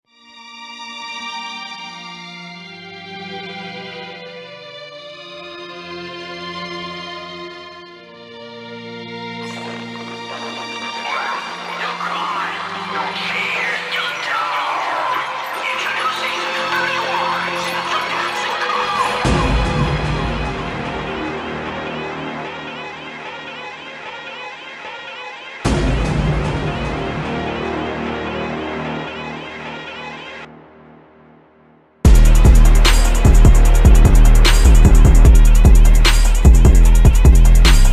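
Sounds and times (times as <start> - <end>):
cinematic trap beat: 9.4 - 22.0, 32.1 - 37.9.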